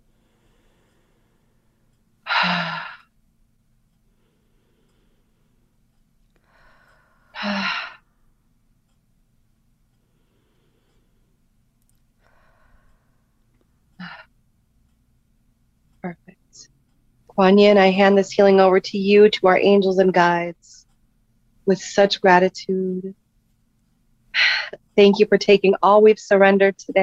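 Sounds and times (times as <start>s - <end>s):
deep breaths in and out during a guided healing meditation: 0.0s - 3.2s, 3.9s - 8.3s, 9.9s - 14.3s
quiet low hum: 0.0s - 27.0s
speech: 17.4s - 20.8s, 21.6s - 23.2s, 24.4s - 27.0s.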